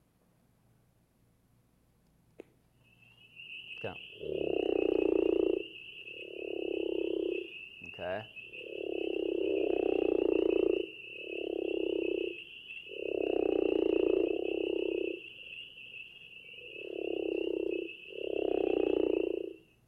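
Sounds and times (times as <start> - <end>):
steady high-pitched insect drone: 2.8 - 19.7
speech: 3.8 - 4.4
crawfish frog deep snoring call: 3.8 - 15.2, 16.7 - 19.6.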